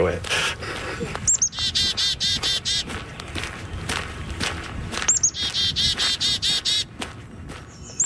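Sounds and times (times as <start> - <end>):
speech: 0.0 - 0.4
rustling and crunching footstep-like noise: 0.0 - 8.0
bird singing bright rapid trilling phrases of high chirps: 1.2 - 3.9, 5.0 - 6.9, 7.7 - 8.0.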